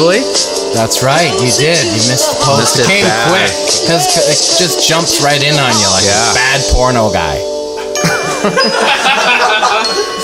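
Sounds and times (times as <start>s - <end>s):
speech: 0.0s - 7.6s, 8.4s - 10.2s
people chattering: 1.4s - 5.1s
people laughing: 2.5s - 3.6s, 7.8s - 10.2s
church bells ringing: 7.8s - 10.2s.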